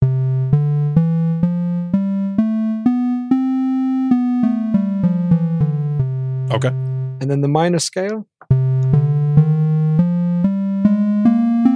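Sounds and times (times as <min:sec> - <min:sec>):
major scale in twelve-tone equal temperament on a bright buzzy synthesized tone: 0:00.0 - 0:07.7, 0:08.4 - 0:11.7
speech: 0:06.5 - 0:08.3.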